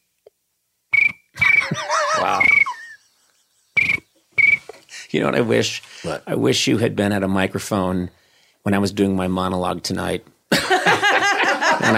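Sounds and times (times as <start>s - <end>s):
voice imitating a cricket chirping: 1.0s - 2.9s
laughter: 1.4s - 3.3s, 10.5s - 11.9s
speech: 5.1s - 10.3s.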